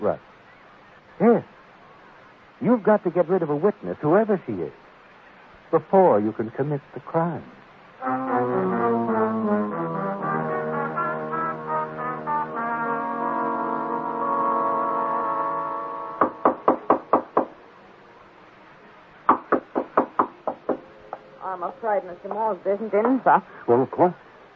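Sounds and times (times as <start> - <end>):
speech: 0.0 - 0.3, 1.2 - 1.5, 2.6 - 4.8, 5.7 - 8.7, 21.6 - 24.3
sustained tonal notes: 8.0 - 16.4
knocking on a door: 16.2 - 17.5, 19.3 - 20.8.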